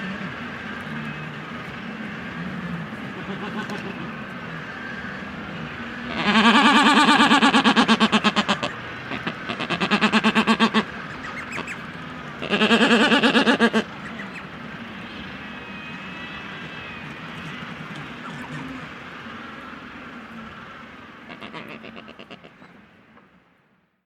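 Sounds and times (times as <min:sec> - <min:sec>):
black-browed albatross calling: 0:03.1 - 0:04.1, 0:06.0 - 0:14.5, 0:15.1 - 0:18.9, 0:21.3 - 0:22.8.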